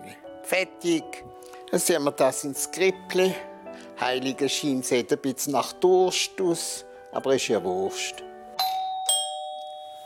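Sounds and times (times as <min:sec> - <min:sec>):
speech: 0:00.5 - 0:08.3
two-tone doorbell chime: 0:08.6 - 0:10.0.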